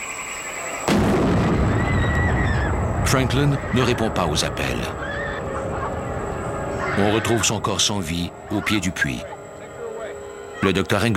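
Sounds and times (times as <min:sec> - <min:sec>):
thin high whine: 0:00.0 - 0:11.1
dynamite explosion: 0:00.8 - 0:06.8
speech: 0:03.1 - 0:05.0, 0:07.0 - 0:09.3, 0:10.6 - 0:11.1.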